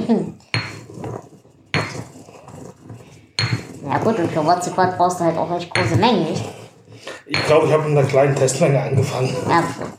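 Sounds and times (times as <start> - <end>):
speech: 0.1 - 0.4, 3.9 - 6.6, 7.3 - 9.9
stone or ceramic mortar and pestle knocking: 0.5 - 2.2, 3.4 - 5.0, 5.7 - 6.2, 7.3 - 7.8.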